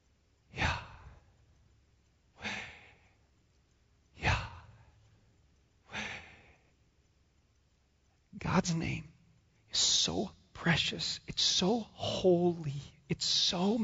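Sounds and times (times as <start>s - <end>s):
person imitating someone at their deathbed gasping for breath: 2.4s - 3.0s, 5.9s - 6.6s
speech: 8.5s - 9.1s, 9.7s - 13.8s.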